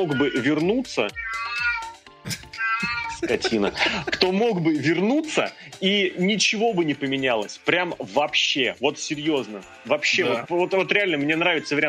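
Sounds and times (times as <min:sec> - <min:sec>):
speech: 0:00.0 - 0:01.6, 0:02.2 - 0:11.8
cat meowing: 0:00.0 - 0:03.5
laughter: 0:02.3 - 0:04.5.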